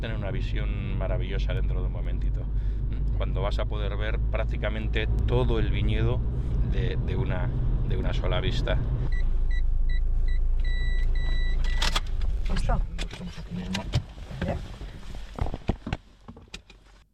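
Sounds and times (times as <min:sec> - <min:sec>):
speech: 0:00.0 - 0:08.9, 0:12.5 - 0:14.8
low car engine rumble: 0:00.0 - 0:17.1
car warning chime beeping: 0:09.1 - 0:11.9
people shuffling out of a car at a vineyard: 0:14.1 - 0:15.8.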